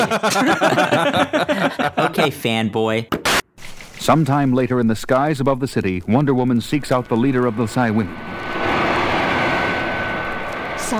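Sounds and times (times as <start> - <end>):
laughter: 0.0 - 2.6
speech: 0.0 - 3.4, 4.0 - 8.7
plane engine in flight: 6.9 - 10.9.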